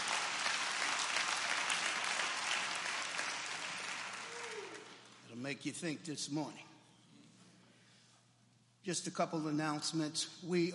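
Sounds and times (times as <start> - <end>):
church audience applauding: 0.0 - 5.2
speech: 5.4 - 6.7, 8.8 - 10.7.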